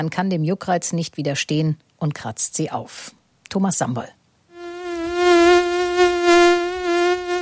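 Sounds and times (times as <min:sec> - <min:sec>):
speech: 0:00.0 - 0:04.2
mosquito buzzing in flight: 0:04.5 - 0:07.4.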